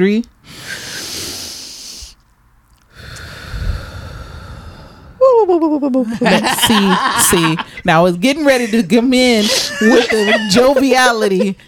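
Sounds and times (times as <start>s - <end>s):
speech: 0.0s - 0.8s, 5.4s - 11.6s
group breathing in and out together on a count: 0.4s - 2.2s, 2.9s - 5.2s
laughter: 6.1s - 7.7s, 9.4s - 11.6s.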